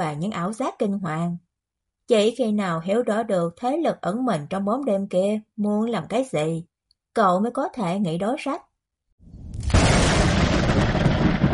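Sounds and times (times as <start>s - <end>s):
speech: 0.0s - 1.4s, 2.1s - 9.4s
thunder crash and roll: 9.3s - 11.5s.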